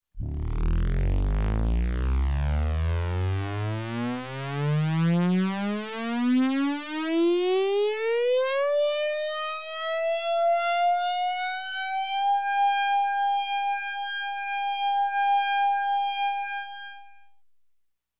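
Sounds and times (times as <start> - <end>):
flat electronic space air raid siren: 0.2 - 17.2.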